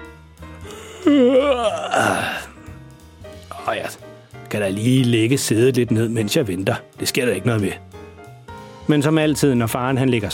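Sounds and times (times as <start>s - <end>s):
person yawning while stretching: 0.6s - 2.7s
speech: 1.0s - 2.2s, 3.7s - 8.0s, 8.9s - 10.3s.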